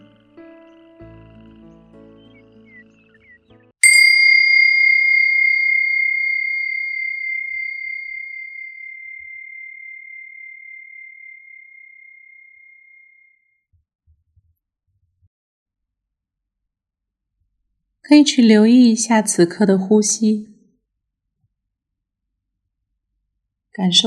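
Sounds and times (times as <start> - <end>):
meditation bell ringing: 3.8 - 11.7
speech: 18.1 - 20.5, 23.8 - 24.0.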